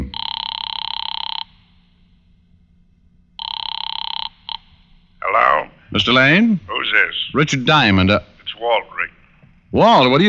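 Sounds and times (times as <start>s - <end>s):
telephone ringing on a call from a phone booth: 0.0s - 2.0s, 3.4s - 5.6s
speech: 5.9s - 10.2s.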